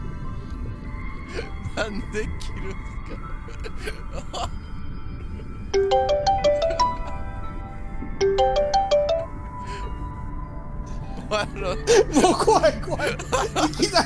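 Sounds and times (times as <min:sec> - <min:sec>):
speech: 0:01.3 - 0:04.7, 0:05.7 - 0:06.3, 0:11.3 - 0:14.0
phone electronic call tone with rising melody of beeps: 0:05.8 - 0:07.6, 0:08.2 - 0:09.8.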